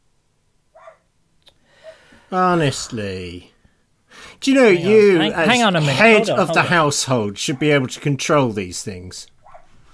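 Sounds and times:
household dog barking: 0:00.7 - 0:01.1, 0:09.4 - 0:09.7
speech: 0:02.3 - 0:03.5, 0:04.4 - 0:09.4
laughter: 0:04.5 - 0:07.3.

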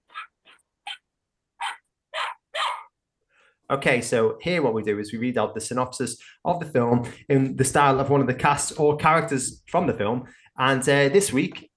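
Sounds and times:
person doing a dog impression with bark-like yelps: 0:01.6 - 0:02.9
speech: 0:03.7 - 0:11.7.

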